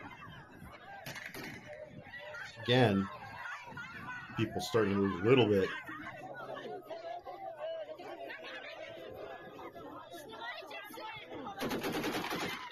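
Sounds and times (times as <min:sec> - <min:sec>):
crowd chatter at a protest against mobilization in Dagestan: 0:00.0 - 0:12.7
laughter: 0:02.2 - 0:10.0
speech: 0:02.6 - 0:03.2, 0:04.4 - 0:06.0
rapid AK-variant rifle fire: 0:11.6 - 0:12.7.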